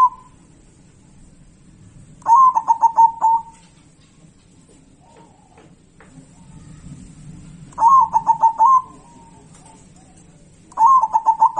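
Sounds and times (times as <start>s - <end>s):
local zebra dove song of quick stuttering coos: 2.3s - 3.6s, 6.3s - 10.0s, 10.8s - 11.5s.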